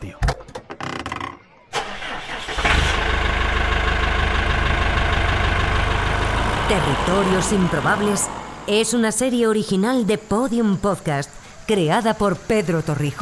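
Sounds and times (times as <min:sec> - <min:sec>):
heavy tractor engine turning over and catching: 0:01.7 - 0:09.0
speech: 0:06.7 - 0:13.2.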